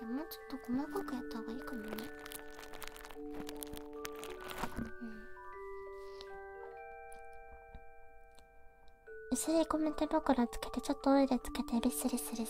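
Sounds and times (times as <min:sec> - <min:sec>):
faint steady tonal background: 0:00.0 - 0:12.4
speech: 0:00.2 - 0:02.4, 0:09.4 - 0:12.4
small sponge pieces being squeezed, crunching and crackling: 0:01.7 - 0:04.9.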